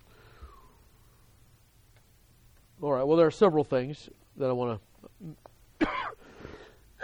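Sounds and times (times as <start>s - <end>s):
speech: 2.8s - 5.5s
person coughing: 5.2s - 6.2s.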